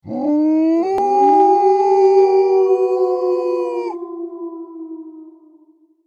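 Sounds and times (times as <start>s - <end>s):
wild pack of wolves howling: 0.0s - 5.7s.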